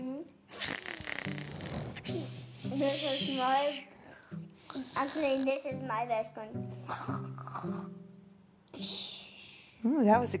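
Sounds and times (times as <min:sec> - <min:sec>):
person imitating a granny snoring: 0:00.5 - 0:03.5, 0:04.7 - 0:05.6, 0:06.8 - 0:08.0
speech: 0:02.1 - 0:03.9, 0:04.7 - 0:08.0, 0:09.8 - 0:10.3.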